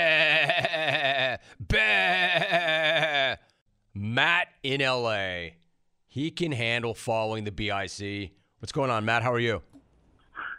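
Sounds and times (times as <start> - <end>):
goat bleating with a shaky wavering tone: 0.0 - 3.4
speech: 4.2 - 9.7.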